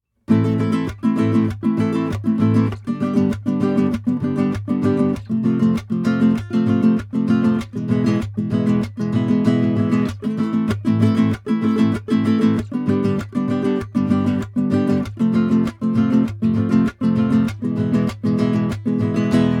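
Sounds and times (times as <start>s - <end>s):
classical guitar strumming: 0.3s - 19.5s.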